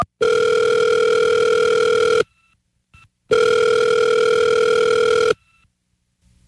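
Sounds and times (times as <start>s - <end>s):
telephone ringback tones: 0.2s - 2.5s, 3.3s - 5.6s.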